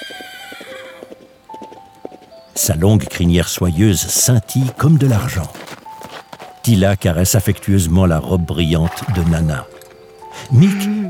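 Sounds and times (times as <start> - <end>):
white horse neighing: 0.0 - 1.2, 8.8 - 9.7, 10.5 - 11.0
white horse galloping across a meadow: 0.0 - 11.0
speech: 2.6 - 5.7, 6.6 - 9.8, 10.4 - 11.0.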